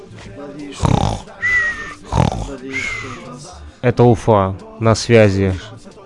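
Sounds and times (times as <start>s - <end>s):
speech: 0.4s - 1.5s, 2.5s - 5.8s
person imitating snoring: 0.8s - 3.4s.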